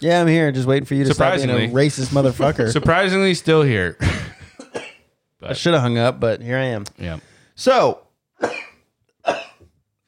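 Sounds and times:
speech: 0.0s - 4.3s, 5.4s - 8.5s
person coughing: 4.1s - 5.1s, 8.4s - 9.7s.

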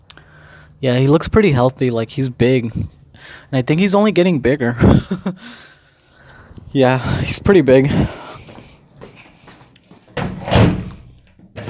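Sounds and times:
speech: 0.8s - 5.7s, 6.7s - 8.2s
laughter: 4.8s - 5.5s
door thudding shut: 10.2s - 11.6s.

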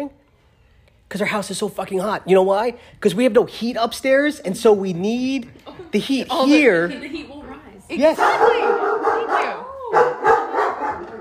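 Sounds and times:
faint room noise: 0.0s - 11.1s
speech: 1.1s - 8.7s
dog barking: 8.0s - 11.1s.

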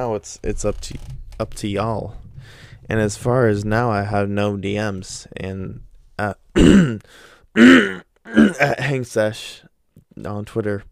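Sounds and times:
speech: 0.0s - 10.9s
person clearing throat: 6.6s - 7.0s, 7.6s - 8.9s.

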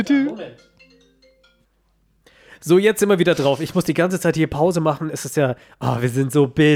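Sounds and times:
speech: 0.0s - 0.7s, 2.6s - 6.7s
phone ringtone playing a bright electronic melody: 0.0s - 1.9s.

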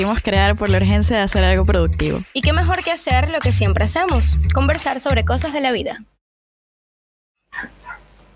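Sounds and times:
speech: 0.0s - 6.1s
dog barking: 7.5s - 8.1s.

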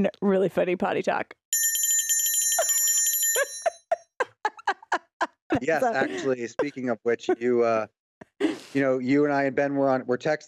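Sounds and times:
speech: 0.0s - 1.4s, 5.5s - 8.0s, 8.7s - 10.4s
bright bell ringing: 1.6s - 4.0s
laughter: 3.4s - 8.6s.

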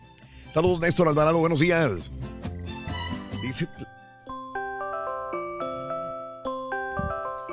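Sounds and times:
speech: 0.5s - 2.3s, 3.4s - 3.8s
alarm clock ringtone with gentle electronic chiming melody: 2.9s - 7.5s.

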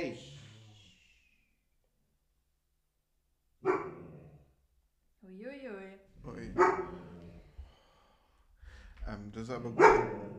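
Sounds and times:
dog barking: 3.6s - 4.2s, 6.4s - 7.3s, 9.7s - 10.3s
speech: 9.1s - 10.3s.

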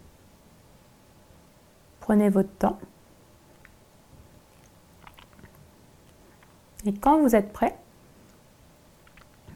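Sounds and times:
faint hiss: 0.0s - 9.5s
speech: 2.1s - 2.9s, 6.8s - 7.8s
chewing of food with crunchy bites: 4.4s - 6.6s.

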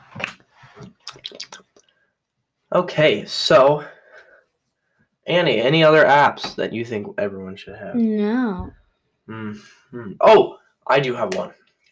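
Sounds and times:
person sipping water: 0.8s - 1.9s
speech: 2.8s - 4.0s, 5.3s - 11.6s
faint swallow: 9.3s - 10.2s.

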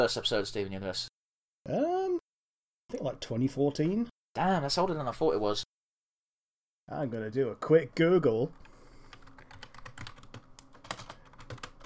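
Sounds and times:
speech: 0.0s - 2.2s, 2.9s - 5.7s, 6.9s - 8.7s
typing on a computer keyboard: 8.5s - 11.8s.

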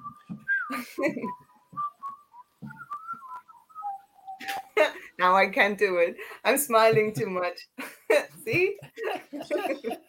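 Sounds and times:
person whistling a short wavering tune: 0.0s - 4.6s
speech: 0.8s - 1.4s, 4.8s - 10.0s
laughter: 8.5s - 10.0s.

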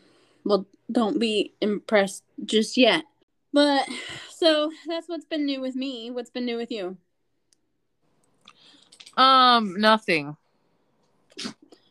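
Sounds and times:
speech: 0.4s - 7.0s, 9.2s - 10.4s, 11.4s - 11.6s
dog sneezing: 11.4s - 11.6s.

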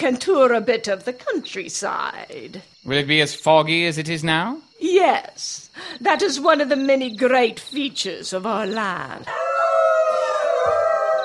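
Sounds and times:
speech: 0.0s - 9.5s, 10.6s - 10.8s
wolf howling: 9.3s - 11.2s.

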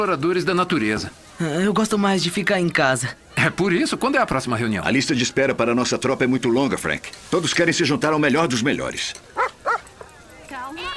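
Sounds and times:
speech: 0.0s - 9.4s
dog barking: 9.4s - 9.9s.

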